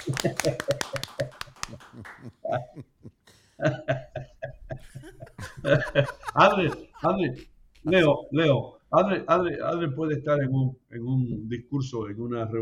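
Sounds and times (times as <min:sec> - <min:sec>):
speech: 0:00.0 - 0:01.0, 0:06.4 - 0:12.6
people clapping: 0:00.0 - 0:03.0, 0:05.7 - 0:07.0
people laughing: 0:00.0 - 0:08.1.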